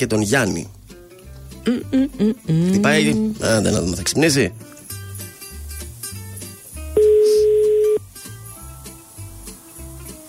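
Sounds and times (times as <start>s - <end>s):
speech: 0.0s - 0.8s, 1.6s - 4.7s
soft music: 0.0s - 10.2s
telephone ringing tone during outgoing call: 7.0s - 8.0s.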